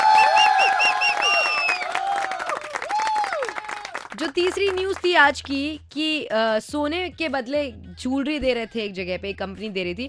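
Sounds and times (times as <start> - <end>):
cheering: 0.0 - 4.1
loud crowd applause: 0.0 - 4.8
shrill whistles: 0.1 - 2.0
speech: 4.4 - 10.0.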